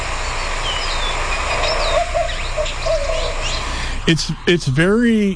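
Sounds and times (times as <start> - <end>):
faint high chirps of other birds: 0.2 - 4.6
white-winged dove giving low owl-like coos: 1.5 - 3.9
speech: 4.1 - 5.3.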